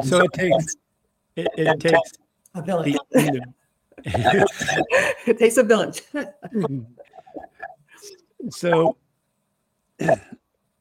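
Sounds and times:
speech: 0.0 - 0.8, 1.4 - 9.0, 10.0 - 10.4
laughter: 2.9 - 5.3
throat clearing with a grunt: 10.0 - 10.4.

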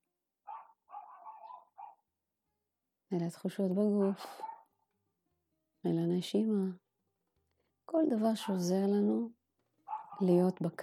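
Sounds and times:
dog barking: 0.5 - 2.0, 4.4 - 4.7, 9.9 - 10.3
speech: 3.1 - 4.5, 5.8 - 6.8, 7.9 - 9.4, 10.2 - 10.8.

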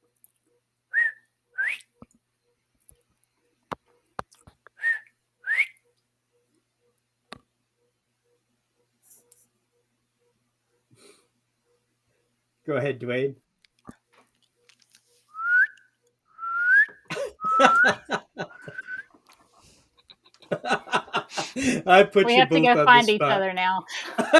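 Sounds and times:
person whistling short rising notes and chirps: 1.0 - 1.8, 4.8 - 5.8, 15.3 - 19.1
speech: 12.7 - 13.4, 21.8 - 24.0
laughter: 17.0 - 19.0, 20.0 - 22.6, 23.9 - 24.3.

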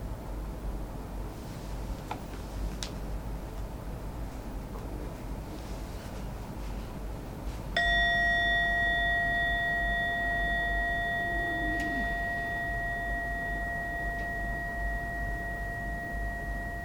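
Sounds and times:
soft hiss: 0.0 - 16.8
meditation bell struck and ringing with a pure tone: 7.8 - 16.8.

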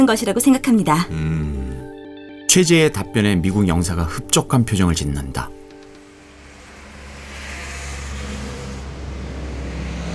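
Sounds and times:
speech: 0.0 - 1.6, 2.5 - 5.6
ladder truck engine rumbling during large-vehicle licence practice at a driving school: 5.2 - 10.1.

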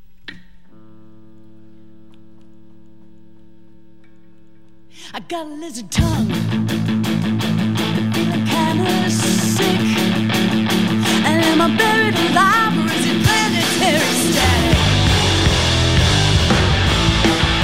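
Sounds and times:
singer's voice over dense guitars and drums: 4.9 - 6.9, 8.1 - 15.7
speech: 5.1 - 6.9
live band playing in a performance studio: 6.2 - 17.6.

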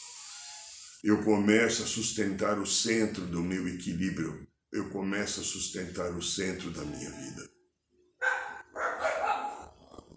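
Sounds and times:
speech: 1.0 - 7.5
neighbor's dogs barking and yapping: 8.2 - 9.7.

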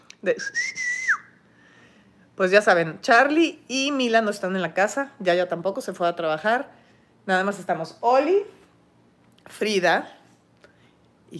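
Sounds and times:
speech: 0.2 - 0.9, 2.4 - 8.6, 9.5 - 10.2
person whistling: 0.4 - 1.4.

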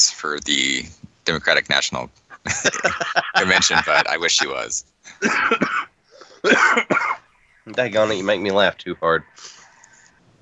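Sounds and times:
speech: 0.0 - 9.6
laughter: 2.3 - 5.7
person coughing: 5.2 - 7.2.

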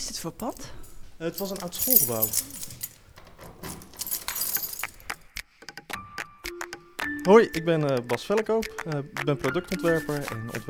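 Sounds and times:
large bunch of studio workspace keys jangling: 0.0 - 5.3
speech: 0.1 - 2.8, 7.2 - 10.6.

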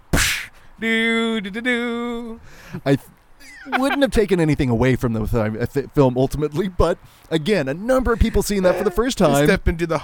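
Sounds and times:
voice imitating a cracking whip: 0.1 - 0.6
speech: 0.8 - 10.0.

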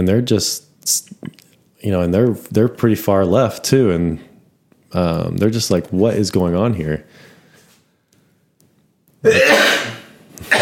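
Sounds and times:
speech: 0.0 - 4.3, 4.9 - 7.2, 9.2 - 9.6
loud sneeze: 9.2 - 10.6.

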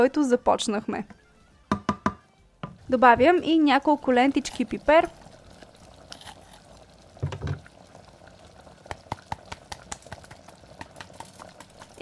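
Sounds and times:
speech: 0.0 - 1.2, 2.9 - 5.2
pot of stew simmering: 2.6 - 12.0.

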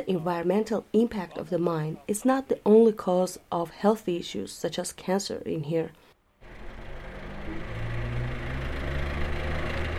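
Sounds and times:
speech: 0.0 - 6.0
car engine starting and idling in Kajaran Armenia: 6.4 - 9.9.

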